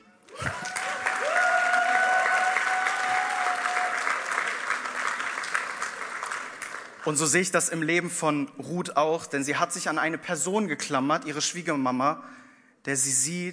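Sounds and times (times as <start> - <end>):
sustained audience applause from a sizable crowd: 0.3 - 7.3
speech: 7.1 - 13.5.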